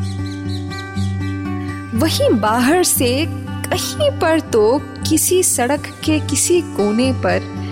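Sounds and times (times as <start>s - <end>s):
small bird chirping: 0.0s - 1.4s
speech: 2.0s - 7.6s.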